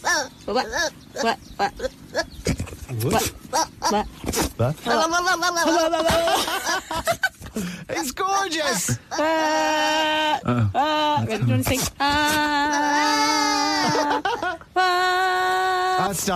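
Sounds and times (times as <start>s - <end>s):
goat bleating: 0.0s - 6.3s, 8.6s - 14.4s
speech: 0.2s - 2.0s, 2.9s - 13.5s
laughter: 5.0s - 7.7s, 13.4s - 16.0s.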